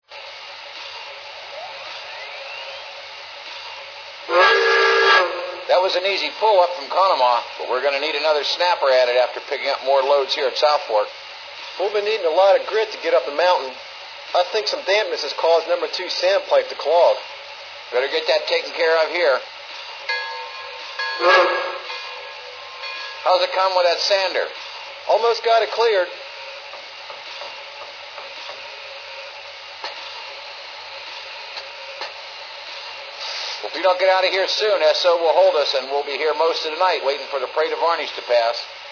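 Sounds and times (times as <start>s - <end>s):
M1A freight train: 0.0s - 38.9s.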